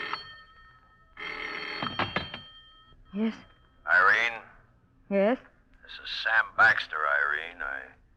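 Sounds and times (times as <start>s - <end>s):
metallic telephone bell ringing: 0.0s - 4.2s
speech: 3.1s - 4.4s, 5.1s - 8.0s.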